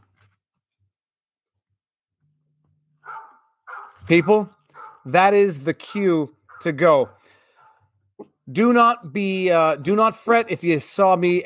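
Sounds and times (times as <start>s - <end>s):
dog barking: 3.0s - 5.2s, 5.9s - 7.9s
speech: 4.1s - 7.2s, 8.5s - 11.4s.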